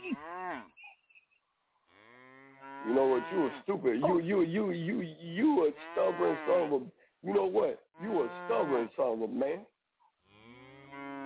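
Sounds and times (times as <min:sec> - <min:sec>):
cow mooing in a cow stable: 0:00.0 - 0:00.8, 0:01.9 - 0:04.6, 0:05.6 - 0:06.8, 0:08.0 - 0:08.9, 0:10.3 - 0:11.2
speech: 0:02.8 - 0:09.7.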